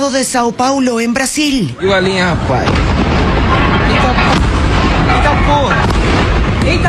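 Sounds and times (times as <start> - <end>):
speech: 0.0 - 2.9, 6.6 - 6.8
underground explosions blowing sewer manhole covers into the air after a chemical plant fire: 2.1 - 6.8
sharp blasts: 2.2 - 6.8.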